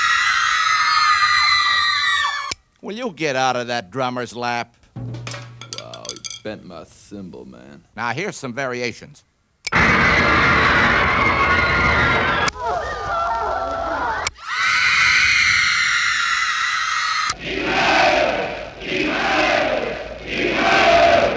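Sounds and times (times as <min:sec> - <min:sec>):
recorded crowd roaring and shouting played from a record on a screaming machine: 0:00.0 - 0:02.6, 0:09.7 - 0:21.3
speech: 0:02.9 - 0:05.2, 0:06.4 - 0:10.0.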